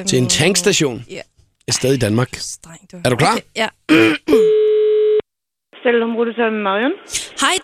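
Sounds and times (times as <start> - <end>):
speech: 0.0 - 4.6, 5.8 - 7.6
telephone ringing tone during an outgoing call to a petrol station in Denmark: 4.4 - 5.2.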